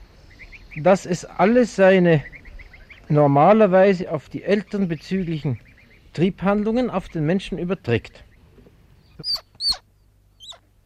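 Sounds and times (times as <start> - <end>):
low hum: 0.0 - 10.8
speech: 0.7 - 2.4, 3.1 - 8.3
young squirrel high squeaky distress calls: 9.1 - 10.7.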